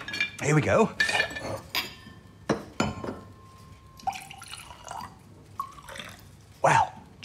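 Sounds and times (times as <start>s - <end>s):
speech: 0.4s - 1.7s
glass clinking with ringing tones: 1.0s - 5.1s
wine pouring into a glass: 4.0s - 6.3s.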